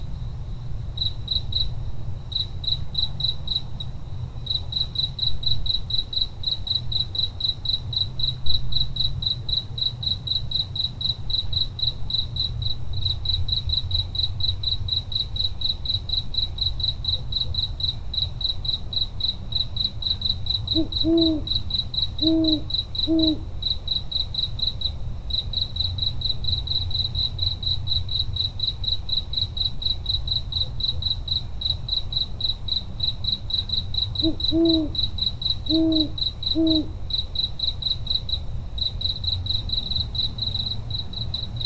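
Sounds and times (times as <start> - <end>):
crickets chirping on a summer night: 0.0 - 41.6
low constant rumble: 0.0 - 41.6
owl hooting: 20.6 - 23.5, 34.2 - 37.0.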